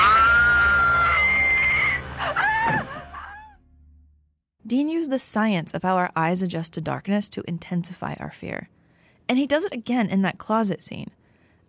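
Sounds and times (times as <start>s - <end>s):
horror-movie scream: 0.0s - 3.7s
speech: 4.7s - 11.2s.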